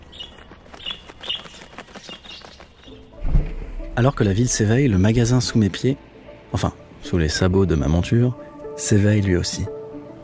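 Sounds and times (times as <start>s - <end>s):
small sparrows chirping: 0.0s - 3.2s
low dull thump: 3.2s - 4.1s
speech: 4.0s - 9.8s.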